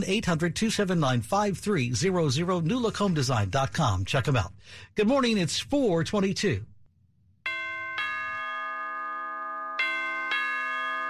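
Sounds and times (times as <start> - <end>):
speech: 0.0 - 6.7
doorbell two-note ding-dong chime: 7.5 - 11.0.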